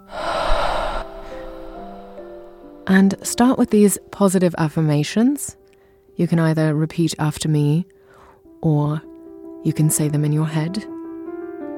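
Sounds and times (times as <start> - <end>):
deep exhale during a guided breathing exercise: 0.0 - 2.8
speech: 2.9 - 5.6, 6.2 - 8.0, 8.6 - 10.9.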